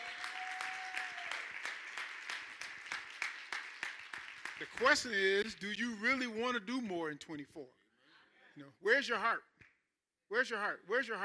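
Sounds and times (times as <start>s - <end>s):
church congregation clapping hands in praise during a worship service: 0.0s - 5.7s
speech: 4.6s - 7.8s, 8.6s - 9.6s, 10.3s - 11.2s.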